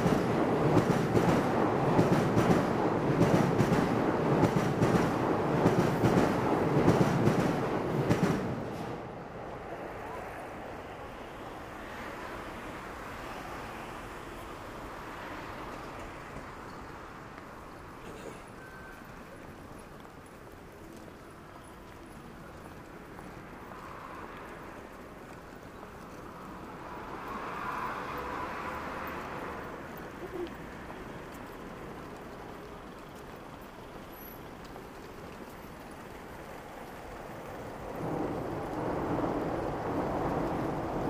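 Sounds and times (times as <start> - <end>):
hum of traffic and activity in a city district: 0.0 - 41.0
train passing on a city street: 0.0 - 41.0.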